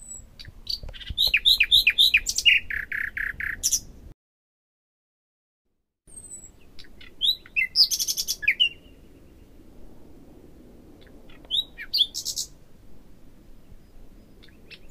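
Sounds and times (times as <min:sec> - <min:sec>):
common nightingale singing: 0:00.0 - 0:04.0, 0:06.1 - 0:09.5, 0:11.0 - 0:12.6, 0:13.8 - 0:14.8.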